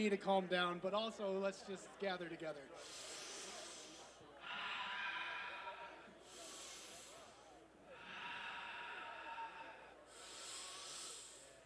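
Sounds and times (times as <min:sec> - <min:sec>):
speech: 0:00.0 - 0:03.1
audience taking collective deep breaths: 0:02.8 - 0:11.6.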